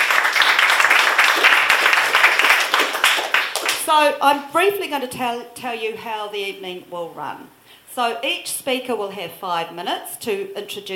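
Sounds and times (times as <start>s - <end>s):
crowd applauding: 0.0s - 3.8s
speech: 3.9s - 10.9s.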